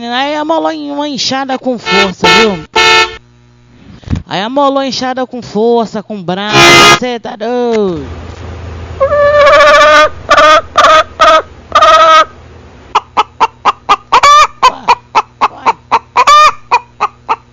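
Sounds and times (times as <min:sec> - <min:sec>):
speech: 0:00.0 - 0:03.1, 0:04.3 - 0:08.2, 0:09.0 - 0:09.4
hen cackling after laying an egg: 0:09.0 - 0:17.5.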